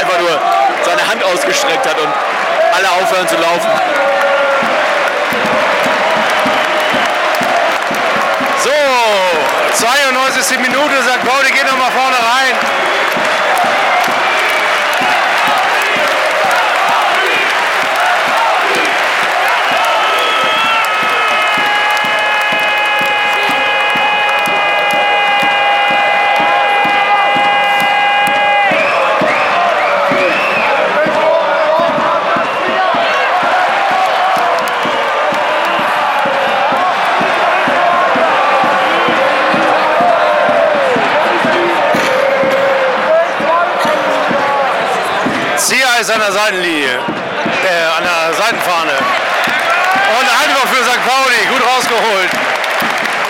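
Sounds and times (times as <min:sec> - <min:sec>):
football stadium crowd roaring and chanting at a match: 0:00.0 - 0:53.2
speech: 0:01.5 - 0:04.6, 0:09.8 - 0:13.0, 0:46.1 - 0:47.1.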